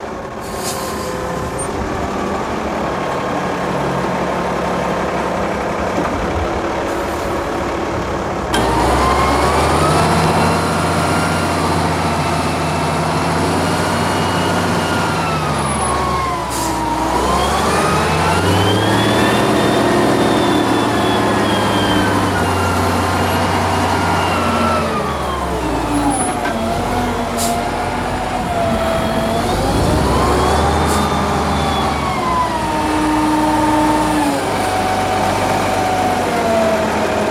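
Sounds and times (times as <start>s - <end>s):
garbage truck front: 0.0s - 37.2s.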